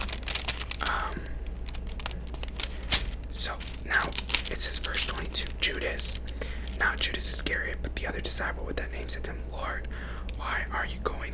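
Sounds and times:
paper page being turned during a reading: 0.0 - 7.3
low steady hum: 0.0 - 11.3
speech: 4.5 - 11.3.

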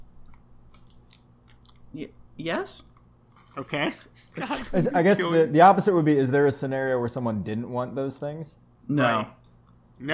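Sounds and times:
chewing crunchy caramel chocolate candy bar with wafer crackers: 0.8 - 1.9
speech: 1.9 - 2.9, 3.6 - 9.4.

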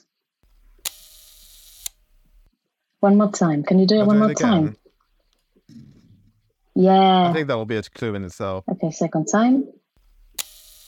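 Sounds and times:
camera shutter firing with mechanical whir: 0.8 - 2.5, 10.0 - 10.8
speech: 3.0 - 4.8, 6.8 - 9.8
laughter: 3.9 - 4.8, 7.2 - 8.6.

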